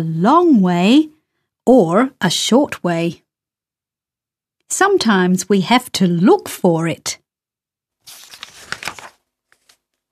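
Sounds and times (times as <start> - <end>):
speech: 0.0 - 3.2, 4.7 - 7.2
paper bag full of balls crinkling open: 8.0 - 9.8.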